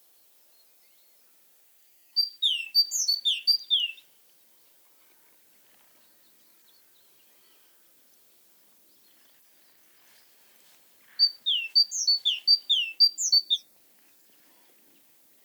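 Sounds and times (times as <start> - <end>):
great tit song of rapid repeated whistled phrases: 11.2 - 13.6.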